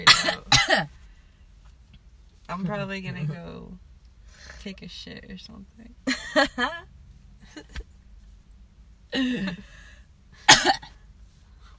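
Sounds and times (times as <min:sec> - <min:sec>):
speech: 0:00.0 - 0:00.3, 0:02.6 - 0:03.8, 0:04.4 - 0:06.9, 0:07.5 - 0:07.9, 0:09.1 - 0:09.8, 0:10.6 - 0:10.9
smoker clearing throat from phlegm buildup: 0:00.0 - 0:00.9, 0:10.5 - 0:10.9
smoker coughing from phlegm buildup: 0:00.0 - 0:00.9, 0:09.2 - 0:09.7, 0:10.4 - 0:10.9.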